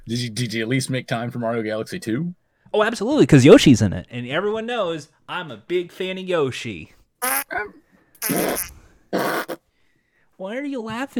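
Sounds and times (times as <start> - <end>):
speech: 0.1 - 9.4, 10.4 - 11.1
raspy buzzing fart-like bursts: 7.2 - 7.4, 8.2 - 9.6.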